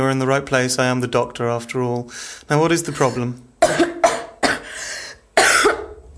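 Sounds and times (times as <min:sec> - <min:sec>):
speech: 0:00.0 - 0:03.5
harsh wet coughs: 0:02.9 - 0:06.0.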